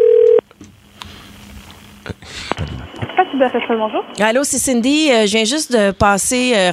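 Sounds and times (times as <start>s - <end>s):
loud steady telephone tone: 0.0s - 0.4s
speech: 3.4s - 6.7s.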